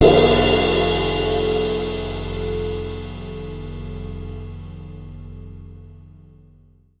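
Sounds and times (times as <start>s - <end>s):
long crash: 0.0s - 5.2s.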